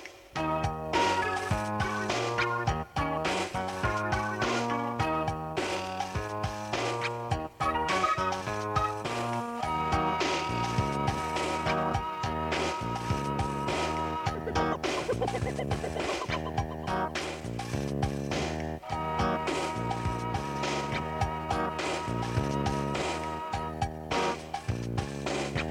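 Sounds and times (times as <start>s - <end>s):
funky bass: 0.4s - 25.6s.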